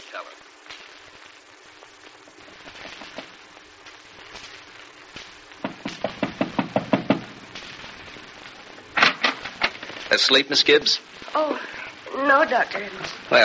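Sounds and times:
speech: 0.1 - 0.8, 10.1 - 11.7, 12.3 - 13.4
knocking on a door: 5.6 - 7.3.

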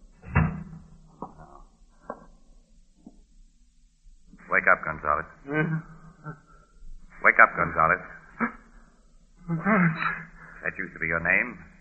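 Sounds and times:
door swinging shut with a solid thump: 0.2 - 0.9
speech: 4.7 - 6.4, 7.6 - 8.6, 9.5 - 11.7.

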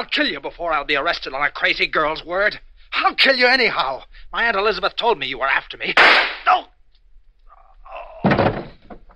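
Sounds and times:
speech: 0.0 - 6.7
gunshot fired through a window: 6.0 - 6.5.

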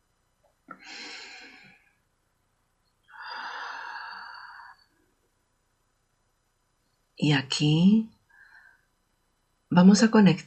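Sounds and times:
slow deep breath in: 0.7 - 1.8, 3.1 - 4.9
speech: 7.2 - 8.1, 9.8 - 10.4.

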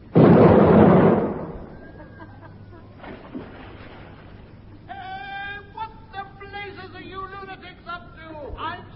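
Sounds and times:
ship's gun fired at a jetty, heavy explosion boom: 0.0 - 2.0
people talking: 4.9 - 8.9.

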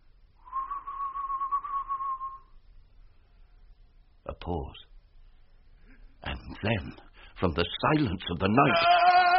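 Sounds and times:
soft steady low whistle at night: 0.4 - 2.6
speech: 4.3 - 4.9, 6.5 - 9.2.

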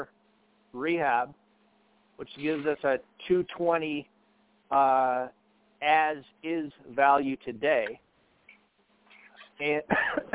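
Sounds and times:
speech: 0.0 - 1.4, 2.2 - 4.1, 4.7 - 8.0, 9.6 - 10.3
faint low hum: 0.0 - 10.3
man clearing his throat with something caught in it: 9.7 - 10.3.

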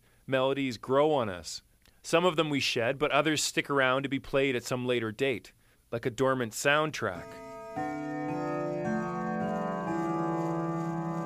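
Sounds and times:
speech: 0.3 - 7.5
clock chiming a slow sequence of ringing tones: 7.2 - 11.2.

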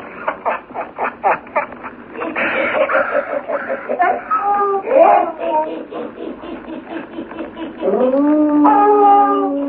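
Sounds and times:
laughter: 0.0 - 8.2
several frightened dogs howling and whining: 3.9 - 5.9, 7.6 - 9.6.

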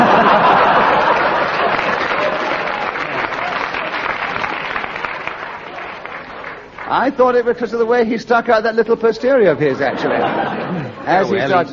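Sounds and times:
laughter: 0.0 - 4.0, 9.5 - 11.7
audience applause: 0.0 - 7.8
speech: 7.0 - 11.7.

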